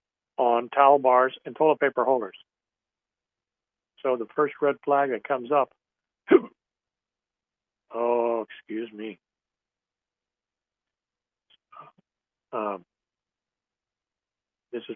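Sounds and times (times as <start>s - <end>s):
speech: 0.6s - 2.6s, 4.0s - 6.4s, 7.9s - 9.2s, 12.5s - 12.9s, 14.8s - 14.9s
person hiccuping: 6.3s - 6.6s.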